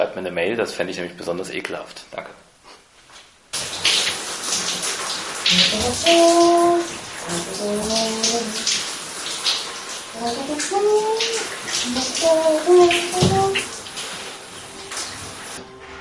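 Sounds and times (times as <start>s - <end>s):
speech: 0.2s - 2.5s, 5.5s - 8.7s, 10.2s - 13.7s
shower running: 3.5s - 15.9s.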